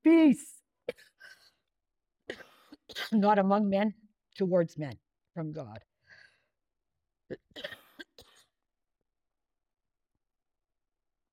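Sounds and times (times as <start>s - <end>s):
speech: 0.0s - 1.0s, 3.0s - 5.9s
harsh coughing: 2.3s - 3.2s, 7.3s - 8.6s.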